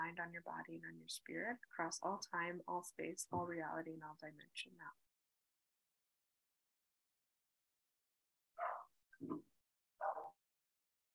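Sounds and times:
speech: 0.0s - 5.0s, 9.2s - 9.5s
faint short dog barks: 8.6s - 8.8s.

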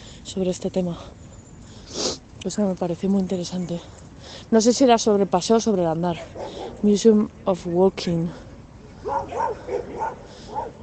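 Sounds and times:
speech: 0.4s - 1.2s, 1.9s - 10.2s
dogs barking: 6.1s - 6.8s, 9.0s - 10.8s.

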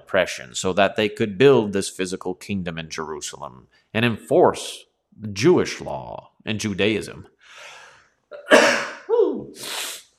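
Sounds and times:
speech: 0.1s - 7.8s
sneeze: 8.5s - 10.1s.

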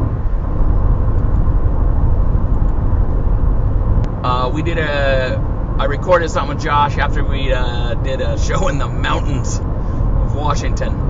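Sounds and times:
traffic noise: 0.0s - 11.0s
speech: 4.6s - 11.0s.

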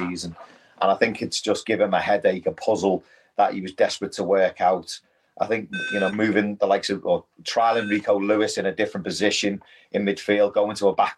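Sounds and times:
speech: 0.1s - 11.1s
faint thin electronic beeping in the house: 5.7s - 6.4s, 7.7s - 8.1s.

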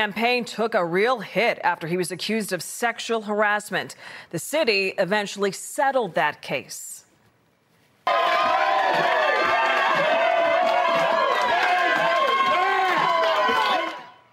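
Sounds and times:
speech: 0.0s - 6.9s, 8.9s - 9.2s
crowd cheering and whooping at an election victory party in a cafe: 8.0s - 14.3s.

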